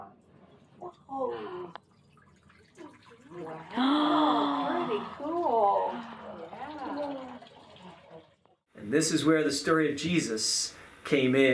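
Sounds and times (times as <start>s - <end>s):
voice imitating water glugging into jugs: 2.7s - 8.5s
speech: 8.9s - 11.5s.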